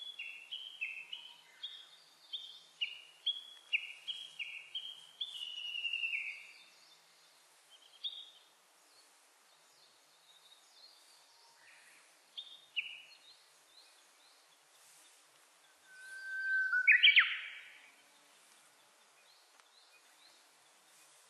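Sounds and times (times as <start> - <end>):
Japanese bush warbler song: 0.0 - 21.2.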